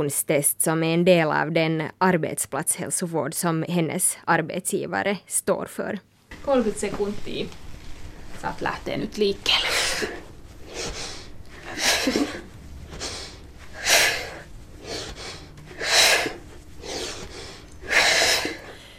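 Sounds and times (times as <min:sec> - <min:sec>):
speech: 0:00.0 - 0:07.6, 0:08.4 - 0:10.2, 0:11.8 - 0:12.4
heavy rhythmic breathing during timed sit-ups: 0:09.5 - 0:18.9.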